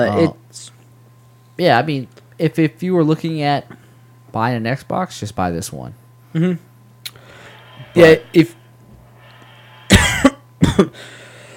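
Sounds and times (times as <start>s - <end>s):
speech: 0.0s - 0.7s, 1.6s - 6.7s, 7.9s - 8.6s, 10.7s - 11.2s
low steady hum: 0.0s - 11.5s
person coughing into a microphone: 9.9s - 11.0s.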